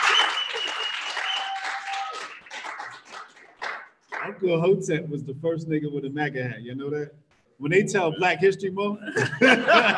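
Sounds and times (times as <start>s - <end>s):
whistling: 0.0s - 2.8s
audience applause: 0.0s - 4.3s
speech: 4.3s - 9.9s
laughter: 9.0s - 9.9s.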